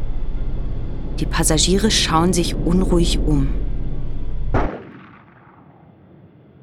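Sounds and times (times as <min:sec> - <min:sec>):
steady low rumble: 0:00.0 - 0:06.5
speech: 0:01.2 - 0:03.6
gunshot fired to scare pigeons off a runway: 0:04.5 - 0:06.6.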